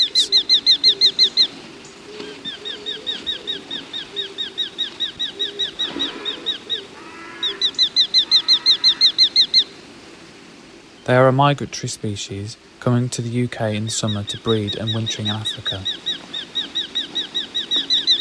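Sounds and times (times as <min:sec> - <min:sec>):
hobby falcon calling: 0:00.0 - 0:09.8, 0:13.8 - 0:18.2
speech: 0:11.1 - 0:16.1.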